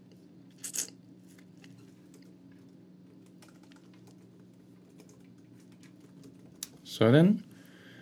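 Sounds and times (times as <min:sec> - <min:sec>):
steady low hum: 0:00.0 - 0:08.0
typing on a computer keyboard during a web search: 0:03.2 - 0:06.6
speech: 0:07.0 - 0:07.5.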